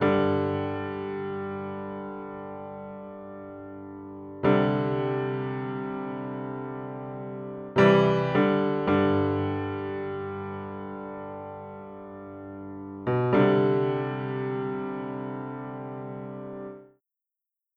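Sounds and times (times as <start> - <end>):
country piano music: 0.0 - 16.8.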